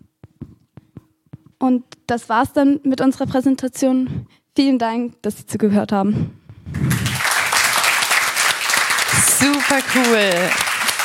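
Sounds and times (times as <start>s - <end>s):
speech: 1.6s - 6.4s, 9.4s - 10.7s
audience applause after a group presentation: 6.7s - 11.0s.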